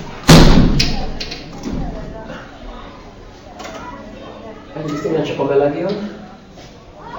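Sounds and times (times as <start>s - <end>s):
heavy thud of something being shut: 0.2s - 1.0s
speech: 5.0s - 6.2s.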